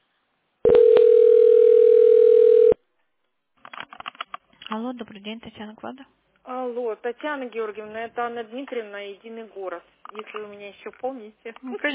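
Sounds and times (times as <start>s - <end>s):
single-pitched telephone line tone while a call is transferred: 0.6s - 2.8s
speech: 4.8s - 11.9s.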